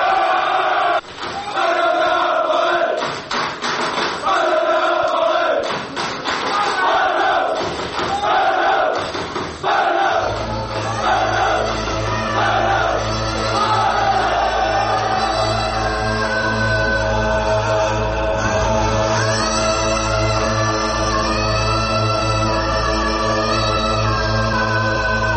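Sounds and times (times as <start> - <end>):
large crowd of football fans roaring and chanting in unison: 0.0 - 25.3
deep droning bass: 10.3 - 25.3.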